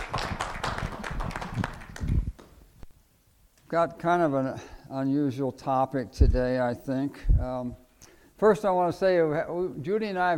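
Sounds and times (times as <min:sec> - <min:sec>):
crowd applauding: 0:00.0 - 0:02.5
speech: 0:03.7 - 0:07.8, 0:08.4 - 0:10.3.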